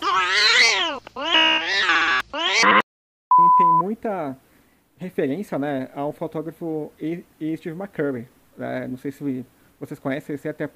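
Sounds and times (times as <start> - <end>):
cat meowing: 0.0 - 2.8
speech: 4.0 - 10.7.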